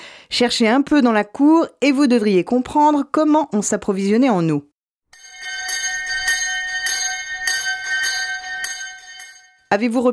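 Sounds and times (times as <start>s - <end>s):
speech: 0.3s - 4.7s, 9.7s - 10.1s
bell ringing: 5.2s - 9.8s.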